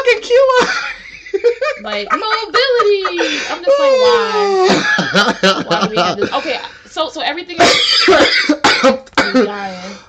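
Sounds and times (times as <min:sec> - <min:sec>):
harsh coughing: 0:00.5 - 0:01.0, 0:04.6 - 0:05.3, 0:07.6 - 0:09.6
laughter: 0:00.7 - 0:06.6
speech: 0:01.8 - 0:10.0.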